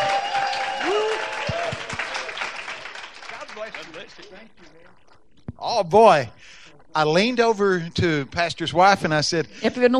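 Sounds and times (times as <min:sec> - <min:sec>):
cheering voices: 0:00.0 - 0:03.8
room full of people applauding: 0:00.0 - 0:04.9
speech: 0:04.0 - 0:09.9.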